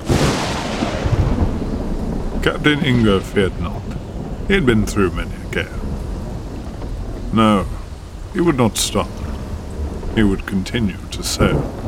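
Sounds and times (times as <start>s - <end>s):
thunder crack and rumble: 0.0s - 11.8s
speech: 2.4s - 3.9s, 4.5s - 5.9s, 7.3s - 7.8s, 8.4s - 9.2s, 10.1s - 11.8s.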